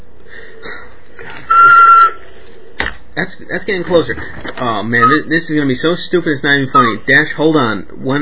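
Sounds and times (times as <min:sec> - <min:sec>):
person whistling one steady high note: 0:01.5 - 0:02.2, 0:05.0 - 0:05.3
speech: 0:03.2 - 0:08.1.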